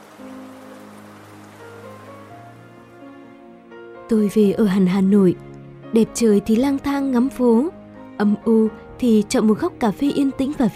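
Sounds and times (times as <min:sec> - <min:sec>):
heavy rain pouring: 0:00.0 - 0:03.4
speech: 0:04.1 - 0:10.7.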